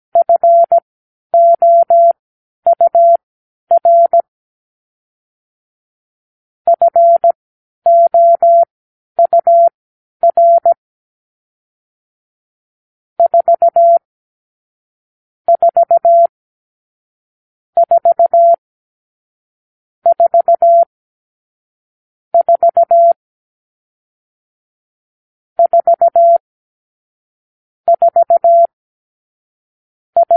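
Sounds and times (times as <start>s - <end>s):
morse code beeps: 0.2s - 0.8s, 1.4s - 4.3s, 6.7s - 10.8s, 13.2s - 14.0s, 15.5s - 16.3s, 17.8s - 18.6s, 20.1s - 20.9s, 22.4s - 23.2s, 25.6s - 26.4s, 27.9s - 28.7s, 30.2s - 30.3s.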